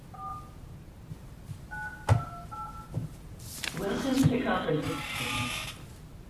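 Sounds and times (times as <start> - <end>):
dual-pitched phone keypad beeps entering a PIN code: 0.2 - 0.5, 1.7 - 2.9
speech: 4.5 - 5.6.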